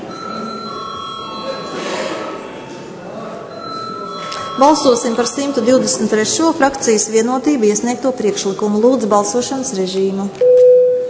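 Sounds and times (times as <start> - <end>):
low murmur of a parliament chamber: 0.0 - 11.0
bell rung in a parliament chamber before a vote: 0.1 - 1.9, 3.6 - 6.4
speech: 4.6 - 10.6.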